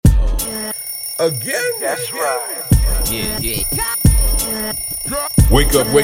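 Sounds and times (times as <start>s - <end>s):
person vocally imitating an alarm clock ringing: 1.2s - 6.0s
speech: 1.2s - 6.0s.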